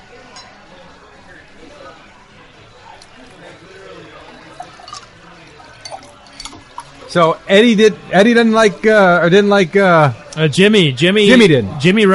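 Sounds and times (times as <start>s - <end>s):
faint voices murmuring: 0.0s - 12.1s
water pouring into a glass: 2.9s - 7.2s
speech: 7.1s - 12.1s.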